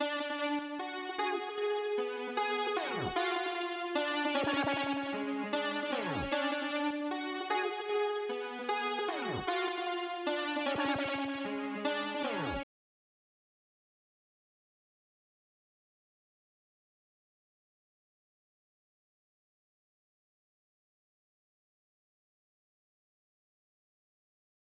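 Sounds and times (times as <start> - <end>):
hip hop keys melody loop in F sharp minor: 0.0 - 12.6.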